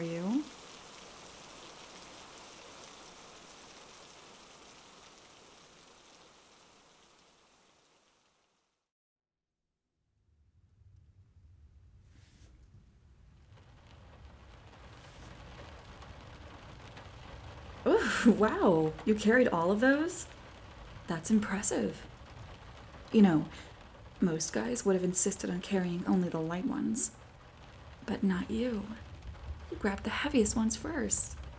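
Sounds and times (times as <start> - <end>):
heavy rain: 0.0 - 8.6, 13.0 - 31.5
deep low rumble of thunder: 12.8 - 31.5
speech: 17.9 - 20.4, 21.1 - 22.1, 23.1 - 27.2, 28.1 - 29.1, 29.7 - 31.4.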